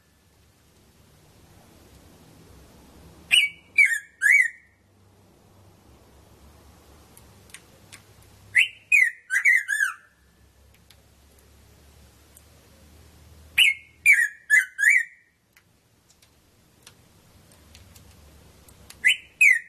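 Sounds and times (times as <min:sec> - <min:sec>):
Red-throated parrotfinch short chirp: 0:03.3 - 0:04.8, 0:08.5 - 0:10.2, 0:13.6 - 0:15.3, 0:19.0 - 0:19.6.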